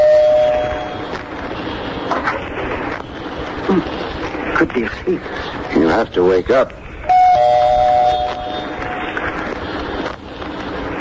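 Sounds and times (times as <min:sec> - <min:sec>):
steady hiss of noise: 0:00.0 - 0:10.9
speech: 0:03.7 - 0:04.0, 0:04.6 - 0:06.8
doorbell two-tone chime: 0:07.1 - 0:08.4.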